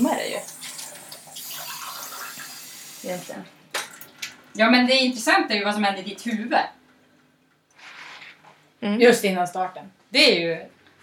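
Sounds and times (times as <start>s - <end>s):
water pouring into a glass: 0.0s - 3.1s
speech: 3.0s - 3.6s, 4.6s - 6.8s, 8.8s - 10.8s.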